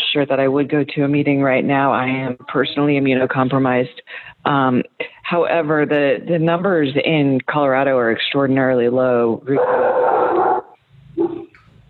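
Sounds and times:
faint noise: 0.0s - 11.8s
speech: 0.2s - 10.1s
female dog barking at neighbors: 9.6s - 11.5s.

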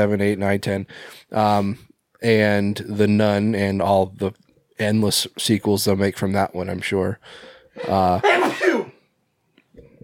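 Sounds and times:
speech: 0.0s - 8.8s
sneeze: 7.8s - 9.0s.

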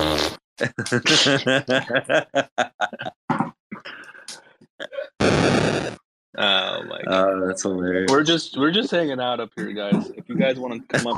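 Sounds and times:
fart sound effects: 0.0s - 1.7s, 5.2s - 11.1s
laughter: 0.6s - 3.2s, 6.4s - 11.1s
speech: 0.6s - 3.5s, 6.4s - 11.1s.

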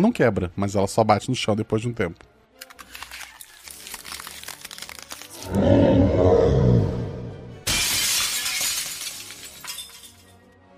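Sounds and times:
speech: 0.0s - 2.3s
loud bright burst of breaking shards of a magical barrier: 2.8s - 5.4s, 7.6s - 10.4s
sharp crackles of glassy shattering effect: 3.0s - 5.8s
deep rumbling roar: 5.4s - 7.5s.

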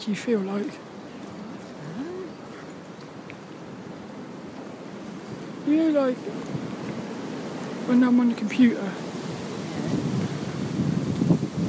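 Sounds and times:
speech: 0.0s - 0.9s, 5.7s - 6.6s, 7.9s - 9.1s
strong wind blowing outdoors buffeting the microphone: 0.0s - 11.6s.

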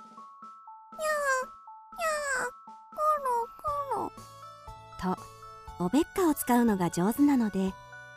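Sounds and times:
piebald cat meowing: 1.0s - 4.1s
speech: 5.0s - 8.1s.

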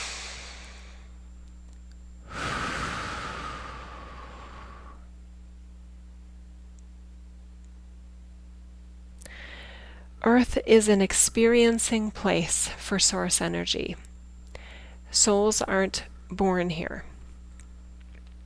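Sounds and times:
long deep breath in a guided meditation: 0.0s - 1.1s, 2.2s - 5.1s, 9.3s - 10.1s, 14.5s - 15.1s
low hum: 0.0s - 18.4s
speech: 10.2s - 14.1s, 15.1s - 17.1s.

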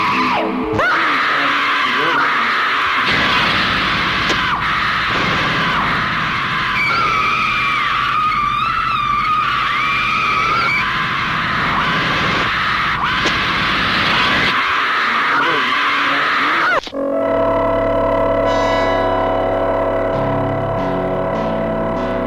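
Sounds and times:
distorted eerie horror-trailer effects: 0.0s - 22.2s
screeching and scream-like wails: 0.0s - 22.2s
sustained ominous musical chords: 16.9s - 22.2s.

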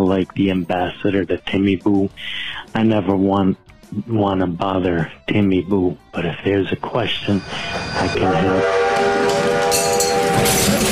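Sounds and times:
speech: 0.1s - 9.8s
rumbling rail noise: 7.4s - 10.8s
train whistle blaring: 7.5s - 10.4s.

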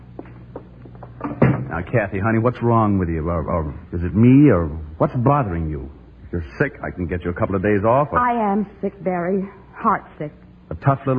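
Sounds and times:
low steady room hum: 0.0s - 11.1s
office door swinging shut with a solid thud: 1.2s - 1.8s
speech: 1.8s - 11.1s.

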